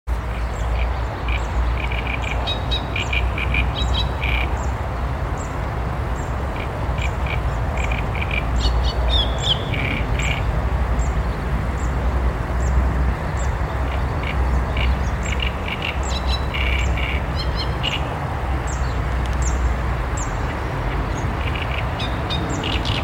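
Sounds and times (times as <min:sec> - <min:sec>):
A arundinaceus: 0:00.1 - 0:23.0.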